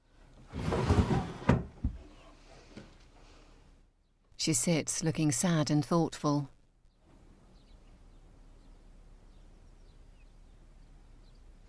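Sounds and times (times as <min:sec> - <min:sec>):
bedside table drawer sliding open: 0:00.4 - 0:01.9
speech: 0:04.4 - 0:06.6.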